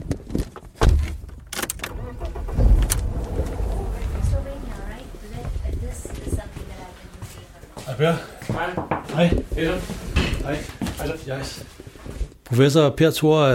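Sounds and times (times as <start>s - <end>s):
car driving with low engine and road rumble: 1.1s - 7.2s
speech: 8.0s - 11.7s, 12.5s - 13.5s.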